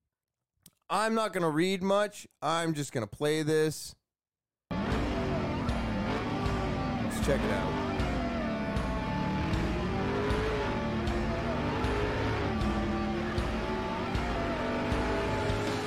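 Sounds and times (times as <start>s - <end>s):
speech: 0.9s - 4.0s, 7.2s - 7.8s
Devel Sixteen car engine revving hard with deep rumbling growl: 4.7s - 15.8s.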